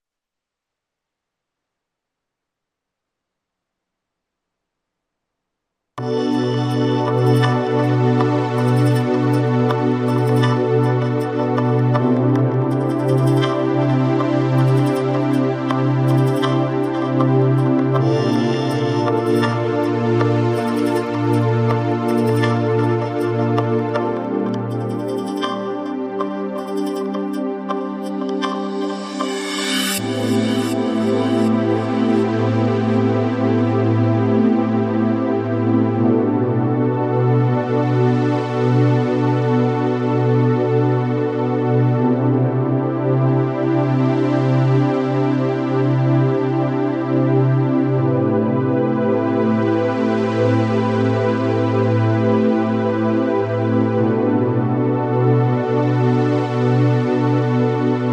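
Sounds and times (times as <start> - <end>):
synth pads: 6.0 - 58.1.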